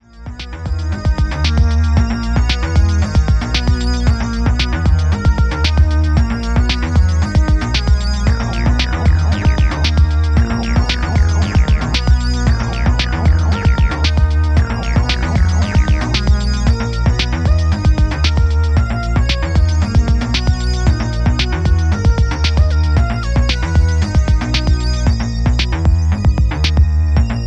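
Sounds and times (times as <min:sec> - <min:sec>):
synthesizers: 0:00.0 - 0:27.4.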